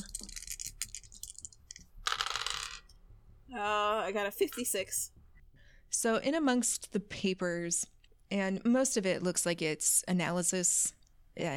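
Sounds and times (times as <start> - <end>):
dice clattering and rattling across a hard surface: 0.0 - 2.9
speech: 3.5 - 5.2, 6.0 - 11.5.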